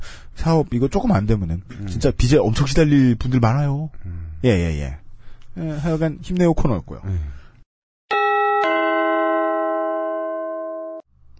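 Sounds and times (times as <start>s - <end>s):
speech: 0.4s - 5.0s, 5.6s - 7.4s
bright two-note sponsor bell chime: 8.1s - 11.1s.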